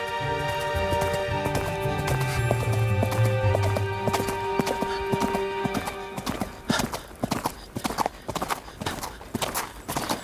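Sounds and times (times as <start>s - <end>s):
sustained tonal backdrop: 0.0s - 6.7s
horse hooves clip-clopping along a deserted winding path on a hot day: 0.0s - 10.2s.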